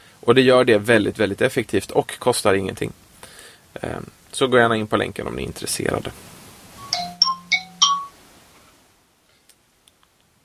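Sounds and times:
speech: 0.2 - 3.0, 3.7 - 6.4
bright electronic phone notification dings: 6.8 - 8.2.

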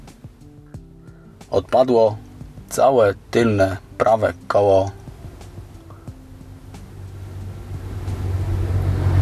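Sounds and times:
speech: 1.4 - 5.0
car engine droning while towing another car on a rope: 2.7 - 9.2.

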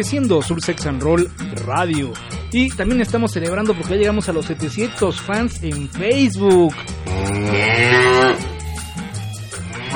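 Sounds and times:
speech: 0.0 - 8.4
cow mooing: 7.0 - 8.8, 9.6 - 9.9.

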